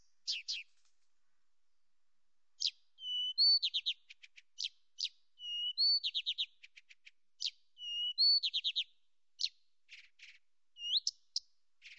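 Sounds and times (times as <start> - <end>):
Blyth's reed warbler Acrocephalus dumetorum dumetorum singing: 0.0 - 0.7, 2.6 - 6.5, 7.4 - 8.8, 10.8 - 11.9.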